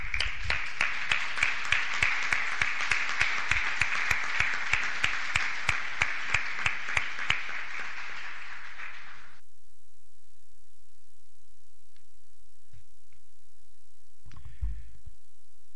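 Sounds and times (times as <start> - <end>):
applause for council members at a municipal council session: 0.0 - 9.4.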